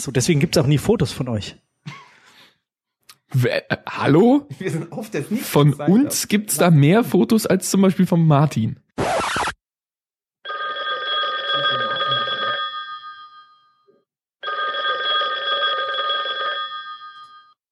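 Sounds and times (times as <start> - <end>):
speech: 0.0 - 2.0, 3.3 - 9.1
telephone ringing: 10.4 - 17.6.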